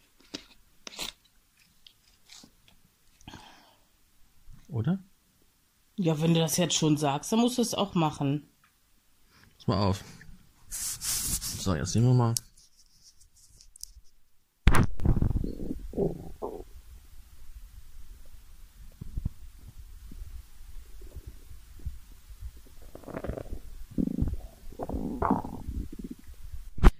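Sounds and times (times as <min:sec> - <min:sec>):
speech: 0:04.8 - 0:05.1, 0:06.0 - 0:08.5, 0:09.6 - 0:10.2, 0:11.6 - 0:12.5
person's stomach gurgling recorded with a microphone on the upper belly: 0:15.0 - 0:16.8, 0:18.8 - 0:26.5.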